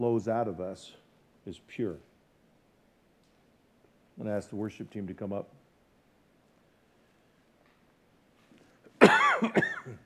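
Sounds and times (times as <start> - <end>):
speech: 0.0 - 2.1, 4.2 - 5.6, 9.4 - 10.0
person coughing: 9.0 - 10.0.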